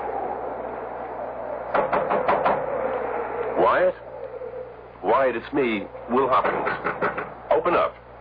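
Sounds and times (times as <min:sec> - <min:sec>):
low hum: 0:00.0 - 0:08.1
knocking on a door: 0:01.8 - 0:02.6, 0:06.4 - 0:07.3
speech: 0:03.7 - 0:04.0, 0:05.0 - 0:08.0.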